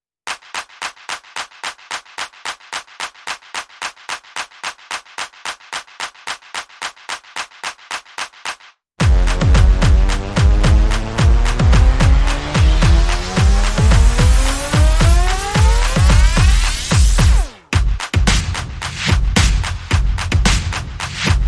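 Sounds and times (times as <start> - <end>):
percussion: 0.2 - 21.4
sound effects: 9.0 - 17.6.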